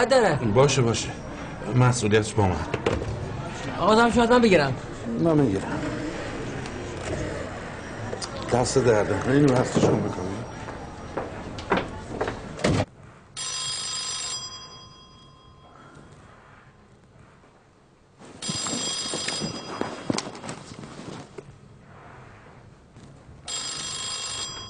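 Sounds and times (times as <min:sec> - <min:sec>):
speech: 0:00.0 - 0:03.2, 0:03.8 - 0:06.0, 0:08.5 - 0:10.3
emergency telephone ringing: 0:13.4 - 0:16.1, 0:18.4 - 0:20.6, 0:23.5 - 0:24.6.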